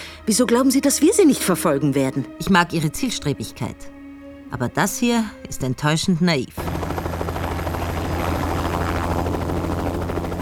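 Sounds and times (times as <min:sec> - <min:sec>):
speech: 0:00.3 - 0:06.7
helicopter flying: 0:04.8 - 0:10.4.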